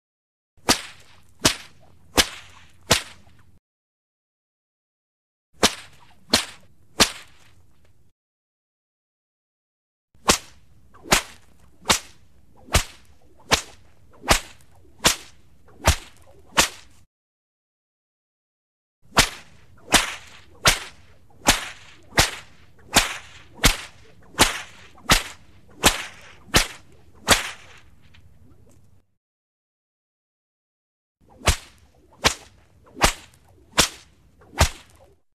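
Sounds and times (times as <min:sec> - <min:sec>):
fast whip lashes: 0:00.6 - 0:03.5, 0:05.6 - 0:07.8, 0:10.2 - 0:17.1, 0:19.1 - 0:28.8, 0:31.2 - 0:35.3.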